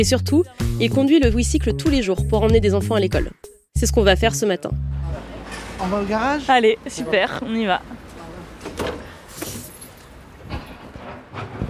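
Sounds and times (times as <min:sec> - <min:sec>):
speech: 0:00.0 - 0:08.0
garage door opening with rattling metallic clunks: 0:08.6 - 0:11.6.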